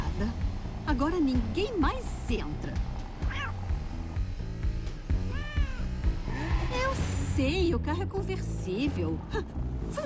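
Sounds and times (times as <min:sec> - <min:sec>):
steady rhythmic music: 0:00.0 - 0:10.0
speech: 0:01.0 - 0:02.9, 0:07.4 - 0:10.0
animated cartoon cat meowing: 0:03.3 - 0:03.6, 0:05.3 - 0:05.9.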